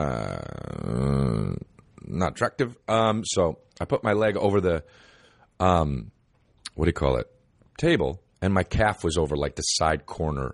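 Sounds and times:
burp: 0.0 - 1.8
speech: 2.2 - 6.2, 6.8 - 10.5.

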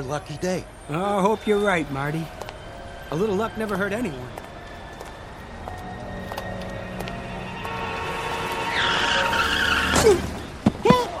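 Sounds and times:
speech: 0.0 - 2.4, 3.1 - 4.4
car tires screeching in a rising skid: 7.4 - 11.0.

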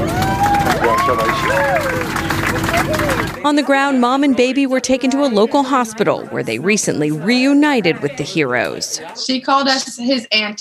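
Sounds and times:
whistles and cheering voices: 0.0 - 3.4
crowd clapping in a dense continuous round of applause: 0.0 - 3.5
speech: 2.9 - 10.5.

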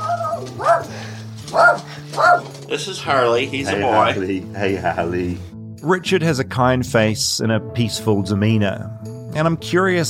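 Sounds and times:
small dog yapping: 0.0 - 0.9, 1.5 - 2.5
speech: 2.4 - 10.0.

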